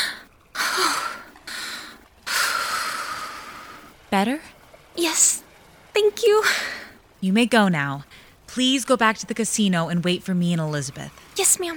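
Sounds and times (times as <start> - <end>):
deep slow breathing: 0.0 - 4.0
speech: 4.1 - 11.7.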